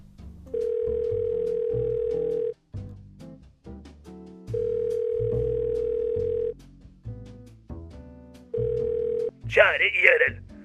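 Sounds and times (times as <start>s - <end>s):
busy musical background: 0.0s - 10.6s
loud steady telephone dial tone of a call: 0.6s - 2.6s, 4.5s - 6.5s, 8.6s - 10.3s
speech: 9.6s - 10.4s.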